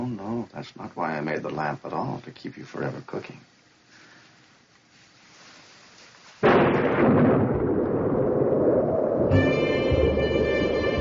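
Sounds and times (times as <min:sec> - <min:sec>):
speech: 0:00.6 - 0:03.5
crash of thunder rolling into a heavy rumble: 0:06.4 - 0:10.9
whistling howling wind: 0:07.7 - 0:09.4.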